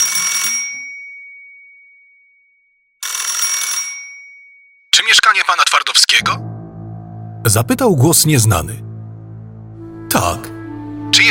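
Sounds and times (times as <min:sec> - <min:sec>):
telephone bell ringing: 0:00.0 - 0:02.4, 0:03.0 - 0:04.9
speech: 0:05.0 - 0:06.5, 0:07.4 - 0:08.9.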